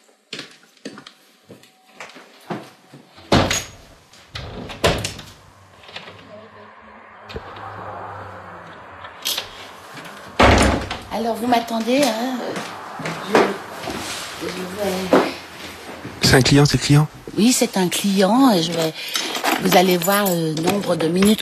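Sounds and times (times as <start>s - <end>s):
door being closed: 3.2s - 6.3s, 10.4s - 11.2s
speech: 11.2s - 12.7s, 14.4s - 15.3s, 16.3s - 21.4s.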